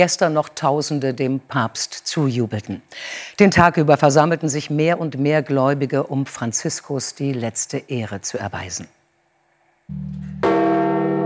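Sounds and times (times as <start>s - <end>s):
speech: 0.0s - 9.0s, 9.9s - 10.2s
church bell at St. Peter's Basilica in Rome tolling at midday: 9.9s - 11.2s.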